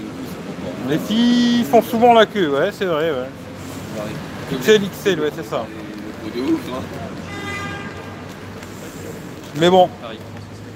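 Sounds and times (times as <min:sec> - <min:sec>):
street traffic rumbling: 0:00.0 - 0:10.7
speech: 0:00.8 - 0:03.4, 0:04.0 - 0:07.2, 0:09.6 - 0:10.3
car horn honking: 0:07.2 - 0:08.3.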